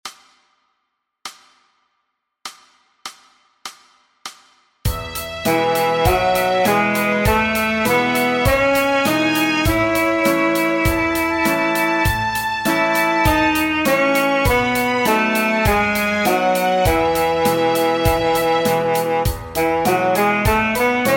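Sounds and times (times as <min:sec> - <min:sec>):
saxophone playing a Db scale in quarter notes: 0:04.9 - 0:21.1.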